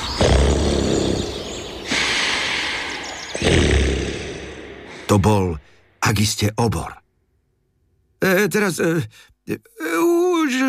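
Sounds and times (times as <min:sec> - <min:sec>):
loud rumbling snoring: 0:00.1 - 0:02.1, 0:03.3 - 0:04.6
speech: 0:05.1 - 0:07.0, 0:08.2 - 0:09.8, 0:10.5 - 0:10.6.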